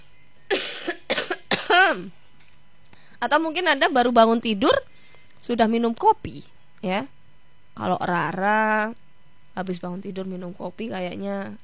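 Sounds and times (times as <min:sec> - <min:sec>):
short harsh coughs: 0:00.5 - 0:02.1
speech: 0:01.9 - 0:02.2, 0:03.2 - 0:07.2, 0:07.8 - 0:09.0, 0:09.6 - 0:11.6.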